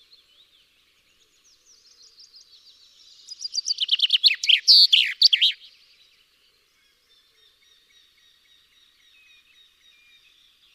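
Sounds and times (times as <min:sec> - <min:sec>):
Common chaffinch singing Fringilla coelebs: 0:01.6 - 0:05.9.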